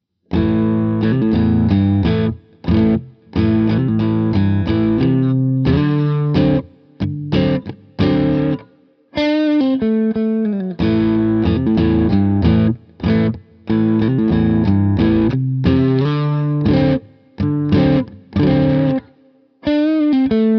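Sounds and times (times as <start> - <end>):
middle pickup dirty electric guitar tone: 0.3 - 20.5.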